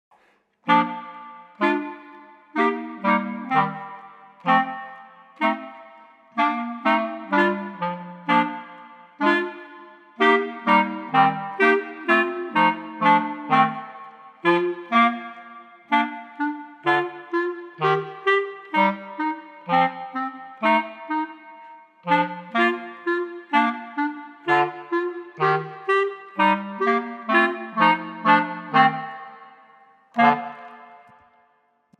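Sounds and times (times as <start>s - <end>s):
clarinet trio playing: 0.7s - 31.3s.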